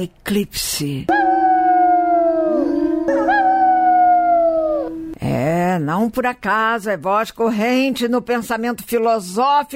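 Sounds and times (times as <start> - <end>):
speech: 0.0 - 1.3, 5.3 - 9.7
wolves howling together in a loud chorus: 1.1 - 5.2.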